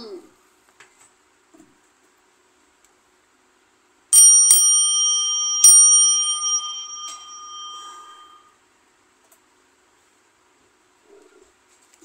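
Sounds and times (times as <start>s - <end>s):
bright clear bell ringing: 4.1s - 8.5s.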